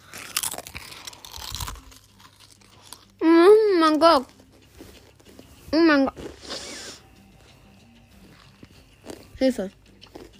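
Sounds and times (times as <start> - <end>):
crunching and chewing of spicy crisps: 0.0 - 3.2, 4.2 - 5.5, 8.3 - 10.3
speech: 3.9 - 4.4, 5.7 - 6.4, 9.4 - 9.8.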